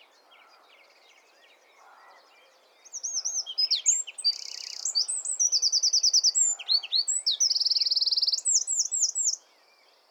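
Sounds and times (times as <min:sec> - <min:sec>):
Eurasian wren Troglodytes troglodytes singing: 0:03.0 - 0:09.4.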